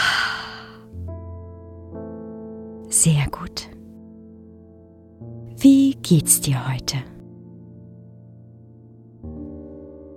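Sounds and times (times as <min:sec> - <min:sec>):
deep breath: 0:00.0 - 0:00.9
speech: 0:02.9 - 0:03.8, 0:05.6 - 0:07.1.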